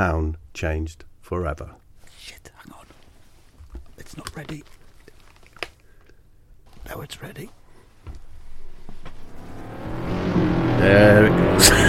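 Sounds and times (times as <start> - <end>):
speech: 0.0 - 2.8, 4.2 - 4.8, 6.9 - 8.2, 10.8 - 11.8
small motorbike engine like a moped approaching: 8.6 - 11.8.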